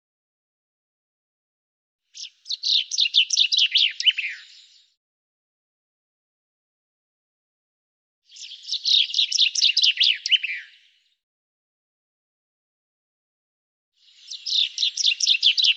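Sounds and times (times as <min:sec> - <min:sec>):
bird chirping song: 0:02.1 - 0:05.0, 0:08.3 - 0:11.2, 0:14.0 - 0:15.7.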